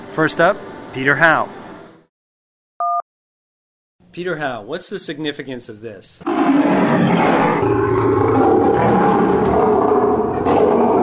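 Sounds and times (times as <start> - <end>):
speech: 0.2 - 1.6, 4.2 - 7.3
lion roaring: 6.2 - 11.0.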